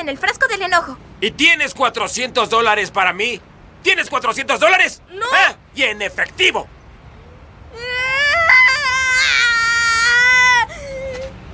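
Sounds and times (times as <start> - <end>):
speech: 0.0 - 6.8
baby crying: 7.8 - 11.4.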